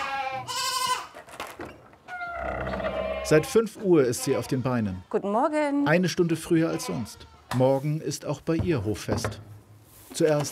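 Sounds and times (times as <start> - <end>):
goats bleating: 0.0 - 1.2, 2.3 - 5.3, 6.4 - 7.6
speech: 3.3 - 9.5, 10.1 - 10.5.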